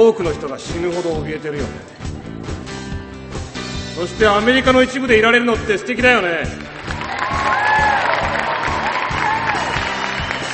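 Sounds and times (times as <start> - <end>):
speech: 0.0 - 2.2, 4.0 - 6.7
large concert crowd cheering and applauding: 6.5 - 10.5
whistles from a concert crowd: 9.9 - 10.5.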